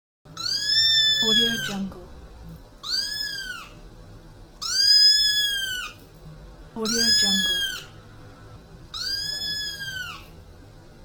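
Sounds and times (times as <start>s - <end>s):
little kitten: 0.4s - 1.8s, 2.8s - 3.8s, 4.6s - 6.1s, 6.8s - 8.0s, 8.9s - 10.4s.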